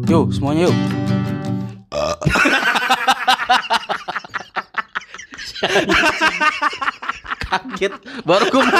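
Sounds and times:
speech: 0:00.2 - 0:02.7, 0:05.7 - 0:06.9, 0:07.5 - 0:08.7
long loud low-pitched burp: 0:01.9 - 0:02.5
several people bursting into excited laughter: 0:02.3 - 0:08.7.

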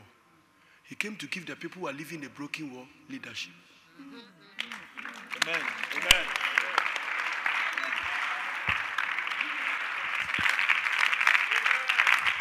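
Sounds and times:
speech: 0:00.9 - 0:06.8
large audience clapping: 0:04.6 - 0:12.3.

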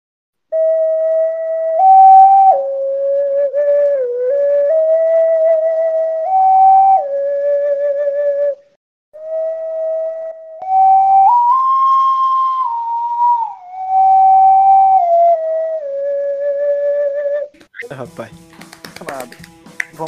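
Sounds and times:
ocarina melody: 0:00.5 - 0:08.6, 0:09.2 - 0:18.4
clattering clapping: 0:18.4 - 0:20.0.

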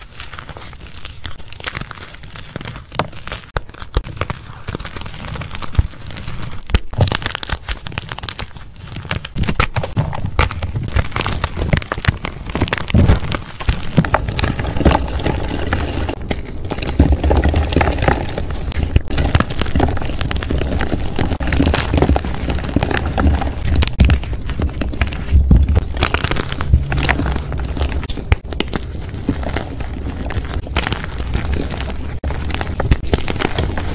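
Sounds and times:
dense crunching of powder: 0:00.0 - 0:33.9
low thudding: 0:25.3 - 0:28.5.

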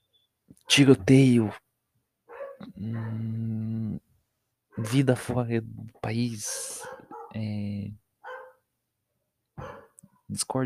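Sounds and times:
speech: 0:00.7 - 0:01.6, 0:02.7 - 0:03.5, 0:04.8 - 0:08.0, 0:10.3 - 0:10.6
faint short dog yip: 0:02.3 - 0:03.2, 0:06.5 - 0:07.4, 0:08.2 - 0:08.6, 0:09.6 - 0:10.0
dog barking: 0:02.3 - 0:03.4, 0:04.7 - 0:05.1, 0:06.5 - 0:07.4, 0:08.2 - 0:08.6, 0:09.6 - 0:10.2.

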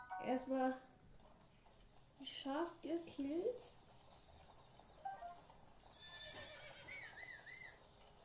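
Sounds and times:
speech: 0:00.2 - 0:00.9, 0:02.2 - 0:03.8
horse whinnying: 0:05.9 - 0:07.7.

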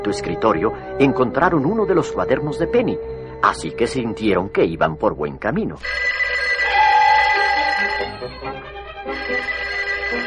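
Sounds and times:
speech: 0:00.0 - 0:06.1
telephone ringing with an electronic trill in a closed shop: 0:05.8 - 0:10.2.

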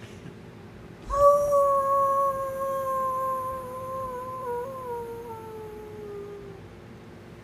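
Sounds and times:
person imitating a wolf howl: 0:01.1 - 0:06.7.

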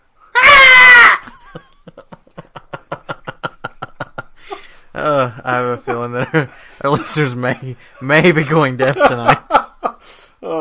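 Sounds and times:
goat shrieking loudly: 0:00.4 - 0:01.3
laughter: 0:01.2 - 0:10.0
speech: 0:05.0 - 0:09.5.

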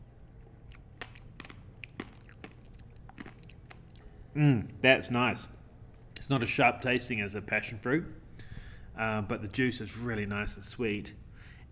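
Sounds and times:
spoon scooping the flesh of a passion-fruit-like fruit from its shell: 0:01.0 - 0:04.0
speech: 0:04.4 - 0:05.6, 0:06.2 - 0:08.2, 0:09.0 - 0:11.7.

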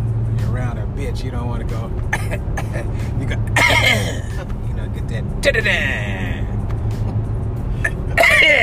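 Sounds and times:
steady low engine-like rumble: 0:00.0 - 0:08.6
speech: 0:01.0 - 0:06.3
man coughing hard: 0:02.1 - 0:04.6, 0:07.8 - 0:08.6.

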